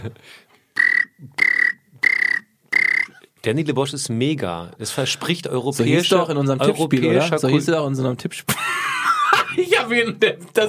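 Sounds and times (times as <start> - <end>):
speech: 0.0 - 0.5, 3.4 - 8.9, 9.6 - 10.6
voice imitating a cricket chirping: 0.8 - 3.2
laughter: 8.5 - 9.9.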